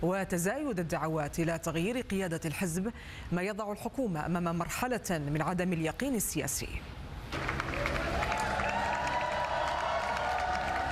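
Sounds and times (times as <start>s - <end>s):
speech: 0.0s - 7.0s
large crowd cheering and applauding at election victory celebration: 7.3s - 10.8s.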